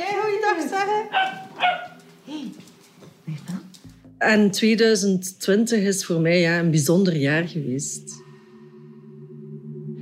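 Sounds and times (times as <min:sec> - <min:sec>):
speech: 0:00.8 - 0:02.6, 0:04.2 - 0:08.2
small dog yapping: 0:01.1 - 0:02.0.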